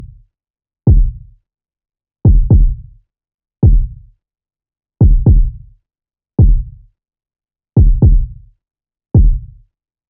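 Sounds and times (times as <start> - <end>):
kick drum groove: 0.9 - 1.2, 2.3 - 2.8, 3.6 - 4.0, 5.0 - 5.6, 6.4 - 6.7, 7.8 - 8.4, 9.2 - 9.5.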